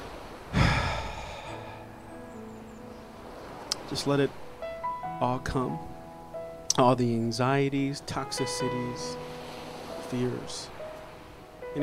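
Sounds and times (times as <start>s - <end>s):
people exhaling deeply during a group prayer practice: 0.5s - 2.0s
speech: 3.9s - 4.4s, 5.2s - 5.9s, 6.8s - 9.3s, 10.1s - 10.7s.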